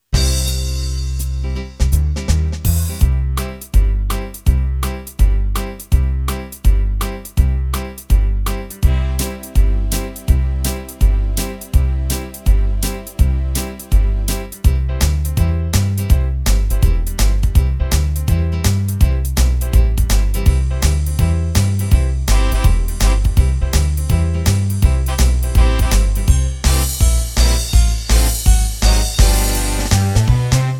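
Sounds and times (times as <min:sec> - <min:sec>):
foxtrot style demo on VSP-3 arranger keyboard: 0:00.0 - 0:30.7.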